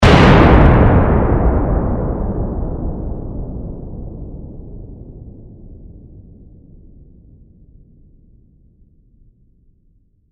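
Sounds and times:
explosion blast trailing off: 0.0 - 6.6.

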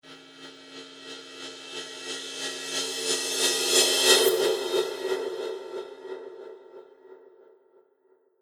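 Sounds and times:
reversed cymbal tremolo: 0.5 - 6.0.

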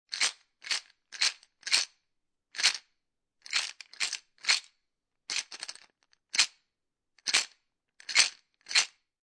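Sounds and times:
small plastic jar filled with beads shaking: 0.1 - 1.9, 2.6 - 2.8, 3.4 - 4.7, 5.3 - 6.5, 7.2 - 9.0.

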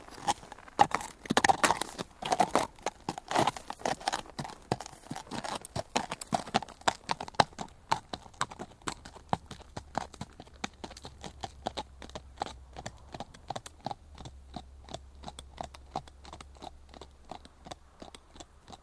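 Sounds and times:
saddle creaking: 0.0 - 11.0
horse hoofbeats clopping on tarmac: 0.0 - 18.8.

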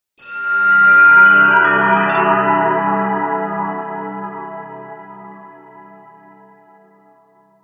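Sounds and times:
soft shimmering twinkle swell transition accent: 0.2 - 5.6.

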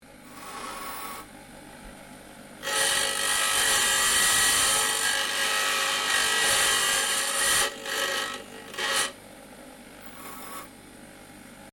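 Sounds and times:
dropsaw grinder blade cutting metal: 0.3 - 1.3, 2.6 - 9.2.

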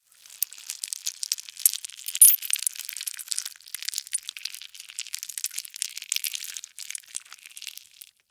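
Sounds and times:
slimy larva maggot movement: 0.4 - 8.1.

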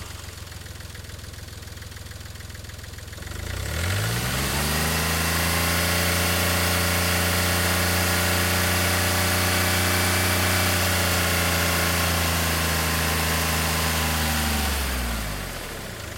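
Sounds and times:
2005 Smart Fortwo engine revving recorded onboard: 3.2 - 16.0.

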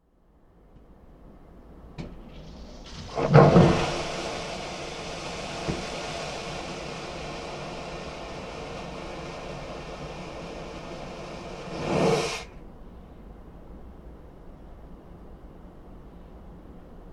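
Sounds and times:
aircraft toilet flushing: 2.0 - 12.6.

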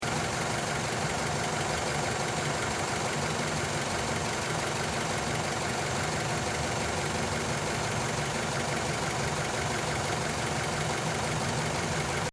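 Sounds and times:
2009 Mazda 3 car engine idling: 0.0 - 12.3.

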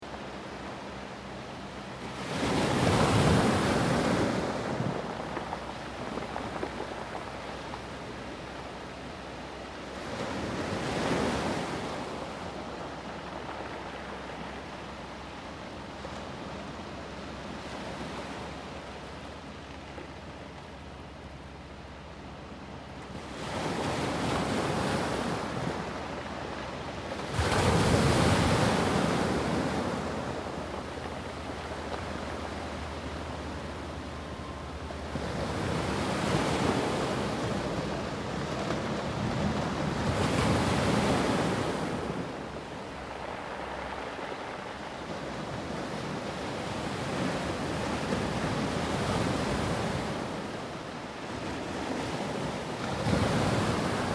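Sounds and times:
ocean waves washing up on a stony beach: 0.0 - 54.1.

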